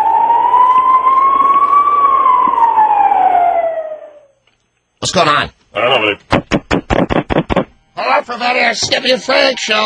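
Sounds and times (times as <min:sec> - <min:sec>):
police siren wailing: 0:00.0 - 0:04.4
speech: 0:05.0 - 0:06.4, 0:08.0 - 0:09.8.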